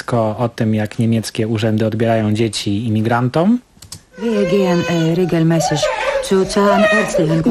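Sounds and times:
speech: 0.1 - 7.4
child crying in a radio drama: 4.2 - 7.4.

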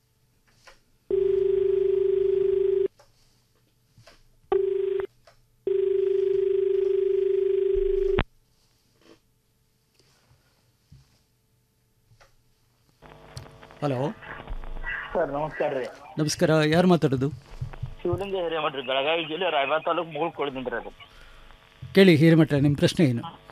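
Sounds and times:
telephone line tone for an incoming call to a farm-advice radio phone-in: 1.1 - 2.9, 4.5 - 5.1, 5.7 - 8.2
speech: 13.8 - 14.2, 15.2 - 21.1, 22.0 - 23.4.

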